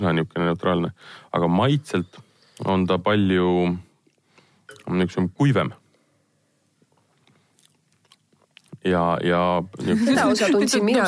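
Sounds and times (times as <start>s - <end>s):
speech: 0.0s - 3.9s, 4.8s - 5.8s, 8.8s - 11.0s
wet lip-smacking and chewing while tasting: 6.9s - 8.8s.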